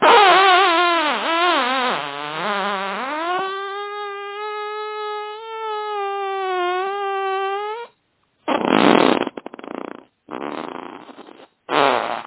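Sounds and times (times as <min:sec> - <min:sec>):
fart: 0:00.0 - 0:12.2.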